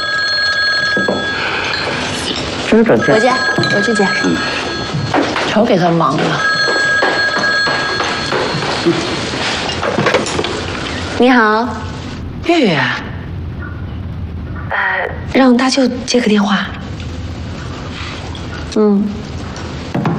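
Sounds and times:
telephone ringing: 0.0 - 11.2
people talking: 2.7 - 4.6, 5.4 - 6.5, 11.2 - 13.2, 14.6 - 16.8.

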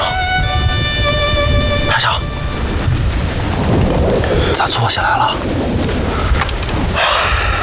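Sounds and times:
loud thunder rumbling and booming: 0.4 - 7.6
speech: 4.6 - 6.3.

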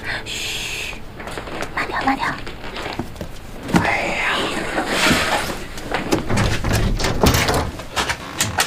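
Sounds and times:
rustling and scraping: 0.9 - 8.6
speech: 2.1 - 2.5
door being pushed shut with knocks and rattles: 6.0 - 8.6.

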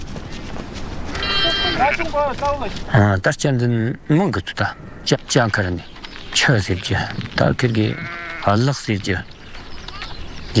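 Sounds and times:
steady noise: 0.0 - 10.5
stray lambs bleating: 1.1 - 2.2, 6.5 - 7.2, 7.8 - 8.7
speech: 1.8 - 9.3.

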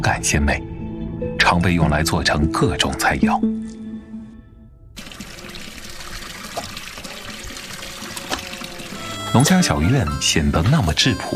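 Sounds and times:
speech: 0.0 - 0.7, 1.5 - 3.8, 9.3 - 11.3
live loaches tipped into a basin in a rural farmhouse yard: 5.0 - 9.1.

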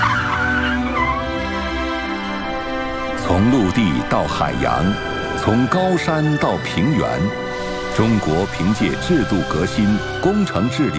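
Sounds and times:
race car tires squealing while skidding at a racetrack in a former mine pit: 0.0 - 1.3
race car engine drone: 2.1 - 10.3
speech: 3.3 - 7.4, 8.0 - 10.9.

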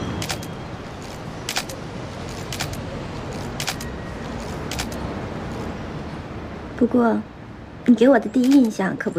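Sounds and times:
camera shutter clicking while taking photos: 0.2 - 5.0
speech: 6.8 - 7.3, 7.9 - 9.1.

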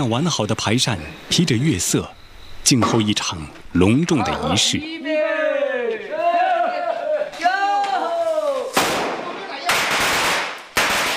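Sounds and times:
speech: 0.0 - 5.1
group of voices shouting rhythmic drawn-out calls: 4.3 - 8.8
long string of firecrackers crackling: 7.3 - 11.1.

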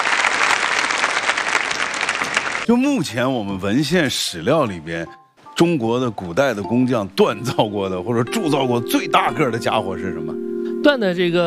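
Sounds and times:
audience applause at a talk welcoming a guest researcher: 0.0 - 2.7
speech: 2.7 - 11.4.

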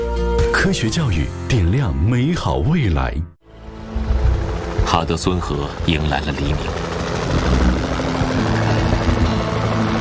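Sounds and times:
speech: 0.6 - 3.4, 5.0 - 7.6
helicopter patrolling over a bald eagle nest near the Federal Dam at Troy on the Hudson River: 3.5 - 9.9.

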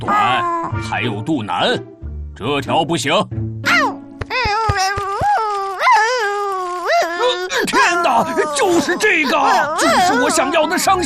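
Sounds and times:
speech: 0.8 - 3.5, 8.2 - 11.0
dog whimpering and whining in a crying tone: 3.7 - 10.7.

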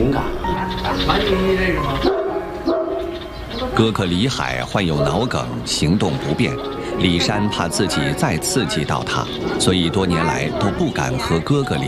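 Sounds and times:
speech: 1.0 - 2.2, 3.8 - 11.8
small dog barking: 2.0 - 3.1.

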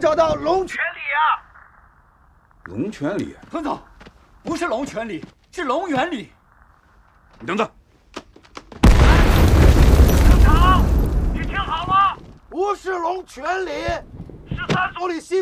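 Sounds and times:
speech: 0.0 - 1.4, 2.7 - 6.4, 7.4 - 7.8, 11.7 - 15.3
artillery explosions: 8.8 - 12.4.

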